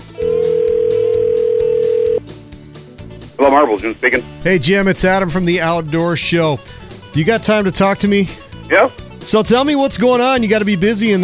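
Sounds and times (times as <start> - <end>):
telephone dial tone: 0.2 - 2.2
speech: 3.5 - 11.2.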